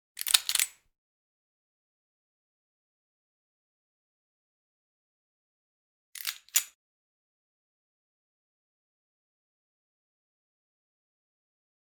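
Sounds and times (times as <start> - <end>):
9mm gun chambering a round: 0.2 - 0.8.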